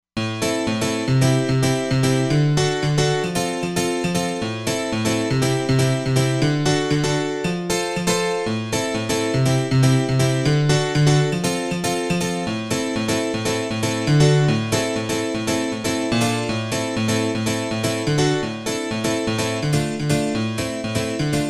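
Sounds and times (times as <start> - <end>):
house music piano: 0.2 - 21.4.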